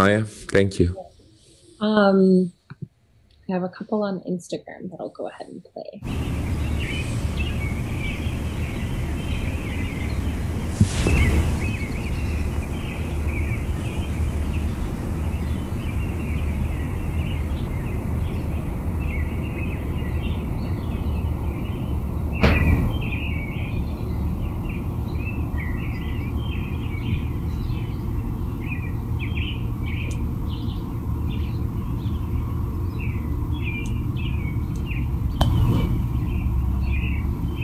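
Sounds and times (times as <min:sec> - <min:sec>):
speech: 0:00.0 - 0:01.0, 0:01.8 - 0:02.6, 0:03.5 - 0:07.0
low outdoor rumble: 0:00.0 - 0:37.6
birds chirping: 0:01.0 - 0:37.6
American robins singing: 0:03.5 - 0:37.6
sharp knocks: 0:22.4 - 0:23.1.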